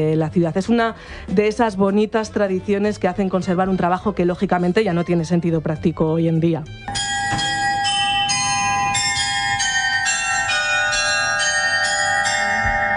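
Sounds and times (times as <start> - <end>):
speech: 0.0 - 7.2
bell chimes of a medieval astronomical clock inside a cathedral: 6.9 - 12.9.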